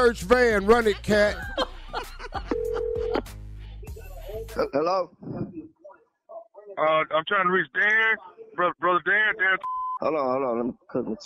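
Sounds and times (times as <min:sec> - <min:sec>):
speech: 0:00.0 - 0:01.6, 0:04.6 - 0:05.6, 0:06.8 - 0:11.2
laughter: 0:00.4 - 0:04.7
telephone dialing tone during a prank phone call: 0:02.6 - 0:03.2.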